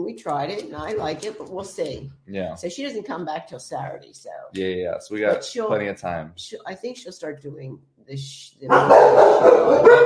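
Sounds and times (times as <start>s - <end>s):
speech: 0.0s - 10.0s
dog barking: 8.7s - 10.0s.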